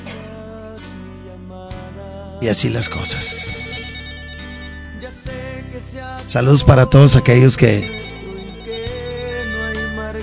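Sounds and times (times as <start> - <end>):
speech: 2.4 - 3.6, 5.8 - 8.1
melodic phone ringtone with sustained electronic tones: 2.4 - 10.2.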